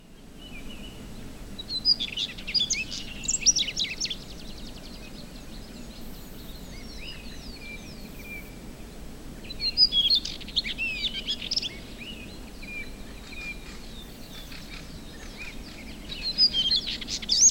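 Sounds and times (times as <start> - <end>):
Ph auroreus song: 0.0 - 17.5.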